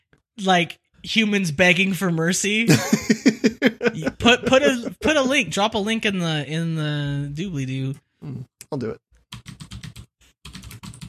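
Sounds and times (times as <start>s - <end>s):
speech: 0.4s - 9.6s
laughter: 2.7s - 5.1s
loud clacking of a computer keyboard: 9.4s - 11.0s.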